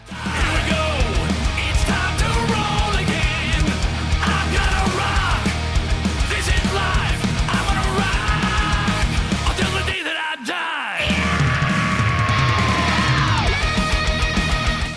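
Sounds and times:
hard rock with distorted guitars and pounding drums: 0.0 - 10.2, 11.0 - 14.9
shouted gritty lead vocal: 0.0 - 14.2.

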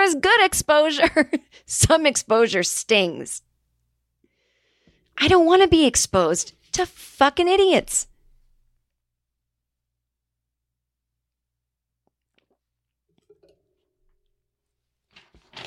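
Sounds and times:
speech: 0.1 - 3.5, 5.2 - 8.1
faint paper crinkles and ticks: 15.0 - 15.6
woman ripping paper: 15.1 - 15.6.

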